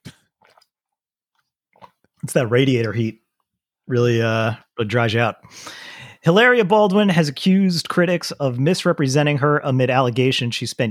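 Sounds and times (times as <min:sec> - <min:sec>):
person gulping water: 0:00.0 - 0:00.8, 0:01.7 - 0:02.2
person sipping water: 0:00.0 - 0:00.8, 0:01.7 - 0:02.2
speech: 0:02.3 - 0:03.2, 0:03.9 - 0:10.9.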